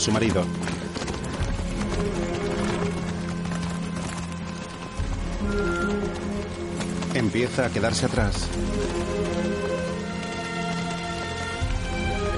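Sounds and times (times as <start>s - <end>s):
speech: 0.0s - 0.7s, 5.5s - 6.3s, 7.2s - 9.6s
continuous rushing noise: 0.0s - 12.3s
riderless horse galloping: 0.0s - 12.3s.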